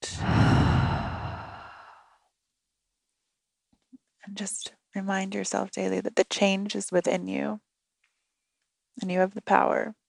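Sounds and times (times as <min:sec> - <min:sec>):
deep breath exhaled during a guided breathing exercise: 0:00.0 - 0:02.2
speech: 0:04.2 - 0:07.7, 0:09.0 - 0:10.0.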